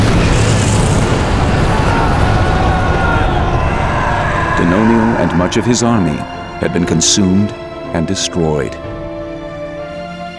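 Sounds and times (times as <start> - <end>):
magma surging up from deep underground with a rumbling roar: 0.0 - 6.8
speech: 4.6 - 8.8.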